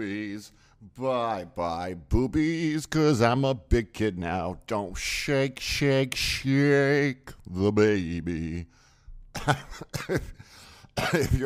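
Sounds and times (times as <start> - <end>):
speech: 0.0 - 8.8, 9.4 - 11.4
harsh throaty coughs: 9.4 - 11.4.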